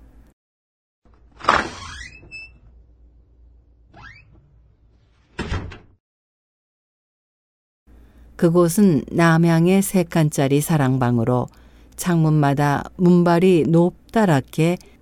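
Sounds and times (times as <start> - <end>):
heavy gate door creaking open: 1.4 - 2.8, 3.9 - 5.9
dull thud of a heavy gate door settling: 5.3 - 6.0
speech: 8.4 - 14.9.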